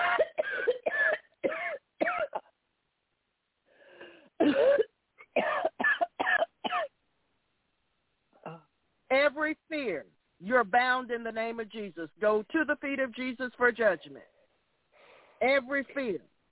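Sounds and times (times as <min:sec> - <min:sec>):
coughing: 0:00.0 - 0:02.6, 0:04.3 - 0:06.9
speech: 0:09.4 - 0:14.3, 0:15.4 - 0:16.3
breath drawn in: 0:14.9 - 0:15.4.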